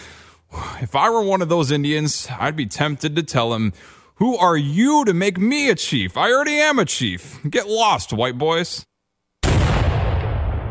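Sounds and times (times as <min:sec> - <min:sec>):
speech: 0:00.8 - 0:08.9
cannon blast: 0:09.4 - 0:10.6.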